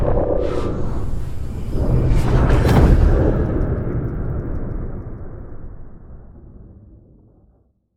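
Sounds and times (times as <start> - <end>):
portal opening: 0.2 - 6.0.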